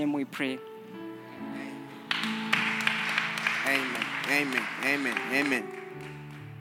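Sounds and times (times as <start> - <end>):
speech: 0.0 - 0.7, 3.7 - 6.1
audience hand clapping: 2.0 - 6.5.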